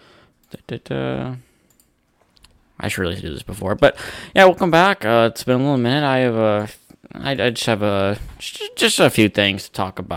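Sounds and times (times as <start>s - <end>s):
speech: 0.5s - 1.5s, 2.8s - 10.1s
computer mouse clicking: 1.7s - 2.6s.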